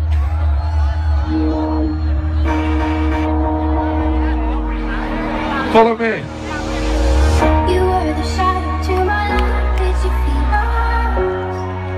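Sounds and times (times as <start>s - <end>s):
big festival crowd cheering and whooping: 0.0s - 11.9s
sustained musical tones: 1.3s - 10.4s.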